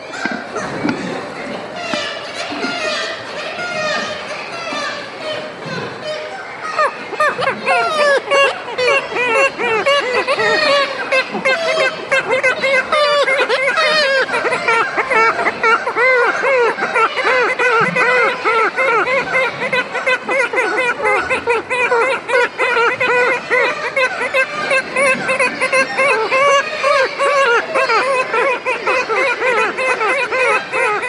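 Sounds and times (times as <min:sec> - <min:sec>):
kittiwake colony calling from sea cliffs: 0:00.0 - 0:31.0
laughter: 0:00.0 - 0:31.0.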